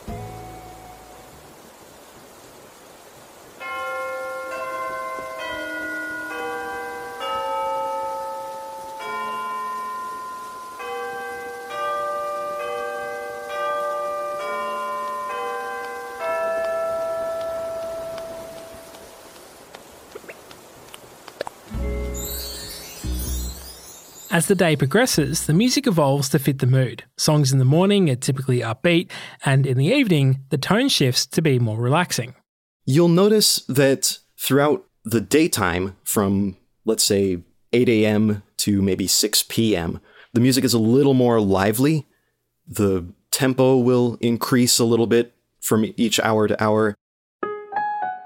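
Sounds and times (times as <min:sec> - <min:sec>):
clock tower bells chiming the hour: 0:03.6 - 0:18.9, 0:21.9 - 0:25.6
speech: 0:24.4 - 0:42.1, 0:42.7 - 0:47.0.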